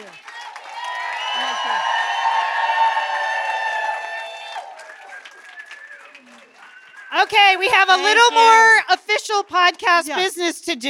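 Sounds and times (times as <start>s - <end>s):
live audience clapping: 0.0s - 10.0s
many audience voices whooping: 0.4s - 8.6s
speech: 7.3s - 10.8s.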